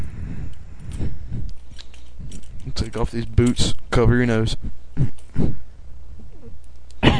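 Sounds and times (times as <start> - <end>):
rustling and shuffling: 0.0 - 6.6
belt buckle jingling as a belt is taken off: 1.6 - 3.6
speech: 2.8 - 5.1.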